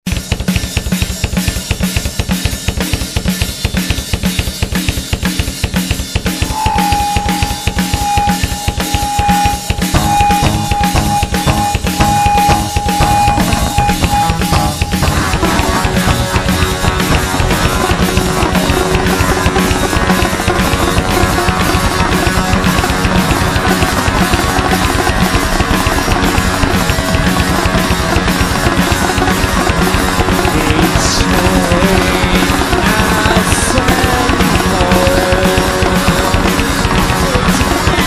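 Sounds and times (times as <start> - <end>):
machine noise: 0.1 - 38.0.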